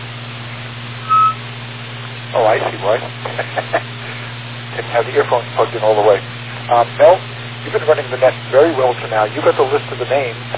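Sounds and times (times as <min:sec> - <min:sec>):
constant low electrical hum: 0:00.0 - 0:10.5
faint static: 0:00.5 - 0:10.5
short mid-pitched radio beep tone: 0:01.1 - 0:01.4
speech: 0:02.3 - 0:03.9, 0:04.8 - 0:10.5
laughter: 0:02.4 - 0:04.2.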